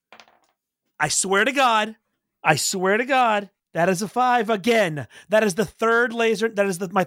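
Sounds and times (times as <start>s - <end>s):
dice tumbling across a tabletop for a game roll: 0.1s - 0.6s
speech: 1.0s - 7.0s.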